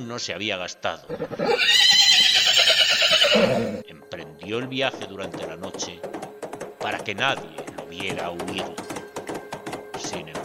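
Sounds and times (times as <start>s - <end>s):
speech: 0.0s - 2.6s, 3.4s - 6.2s, 6.8s - 8.9s
horse whinnying: 1.1s - 3.8s.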